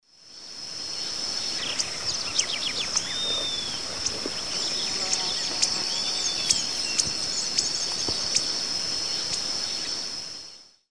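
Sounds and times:
Heliomaster longirostris feeding calls in Eastern Lowlands of South America: 0:01.4 - 0:09.8.

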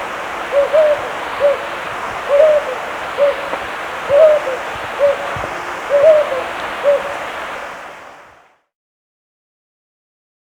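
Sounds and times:
Jocotoco antpitta giving soft low hoots in Ecuador: 0:00.0 - 0:07.3
steady hiss: 0:00.0 - 0:08.6.

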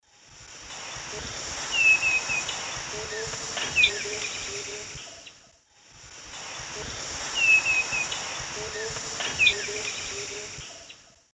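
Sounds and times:
Pachyramphus marginatus calls in the Eastern Lowlands of South America: 0:00.8 - 0:05.4, 0:07.2 - 0:11.1.

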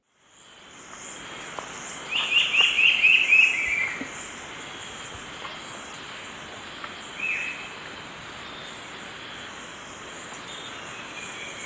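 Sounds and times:
Brown-billed scythebill song in Ecuador: 0:02.0 - 0:05.1, 0:07.0 - 0:07.8, 0:10.2 - 0:11.6.

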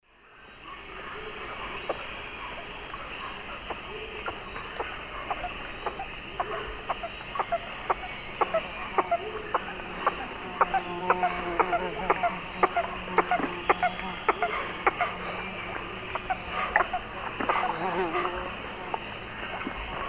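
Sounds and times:
Jacana jacana calling in the Eastern Lowlands of South America: 0:03.2 - 0:20.0.

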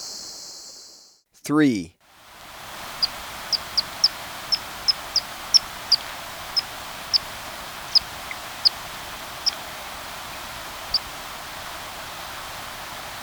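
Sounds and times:
speech: 0:01.5 - 0:01.9
quiet hiss: 0:01.5 - 0:13.2
Andean tit-spinetail uttering thin high sharp chips in Ecuador: 0:02.8 - 0:12.5.

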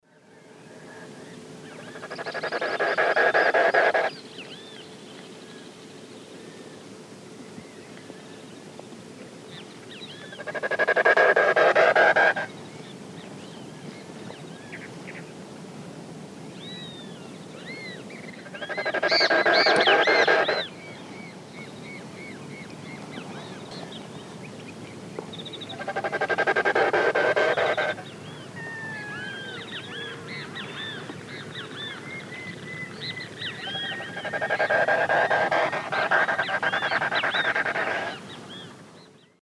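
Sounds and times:
Gallinago paraguaiae winnowing in the Eastern Lowlands of South America: 0:01.9 - 0:04.1, 0:10.4 - 0:12.5, 0:18.4 - 0:20.7, 0:25.7 - 0:28.2, 0:33.3 - 0:38.3.

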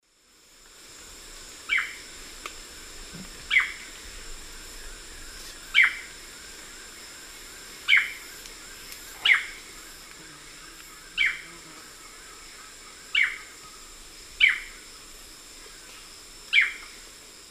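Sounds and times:
Myrmeciza melanoceps call in the eastern lowlands of South America: 0:01.7 - 0:02.0, 0:03.2 - 0:04.0, 0:05.7 - 0:07.0, 0:07.7 - 0:09.9, 0:10.6 - 0:14.8, 0:16.5 - 0:17.0.

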